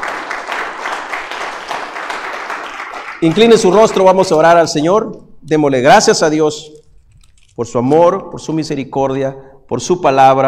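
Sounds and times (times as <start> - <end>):
congregation applauding: 0.0 - 4.5
speech: 3.2 - 6.8, 7.6 - 10.4.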